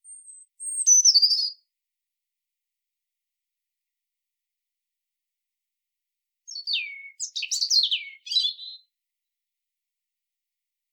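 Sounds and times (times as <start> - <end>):
European robin Erithacus rubecula singing: 0.0 - 1.7, 6.5 - 8.9.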